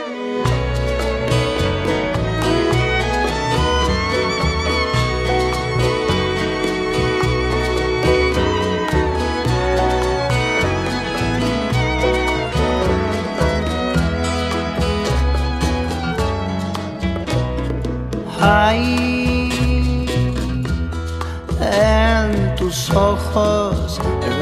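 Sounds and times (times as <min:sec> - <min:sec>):
bolero song playing from a record: 0:00.2 - 0:24.4.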